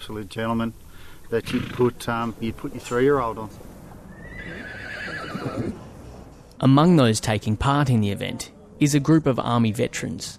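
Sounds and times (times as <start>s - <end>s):
speech: 0.1s - 3.8s, 6.6s - 10.3s
horse neighing: 1.4s - 2.0s, 4.1s - 5.8s.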